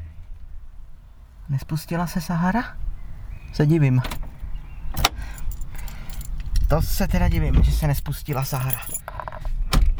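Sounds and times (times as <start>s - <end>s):
soft rattling of a steering wheel lock: 0.7s - 9.1s
speech: 1.5s - 2.9s, 3.5s - 4.2s, 6.7s - 9.2s
steering wheel lock clanking as it is fitted to a parked car: 1.5s - 9.2s.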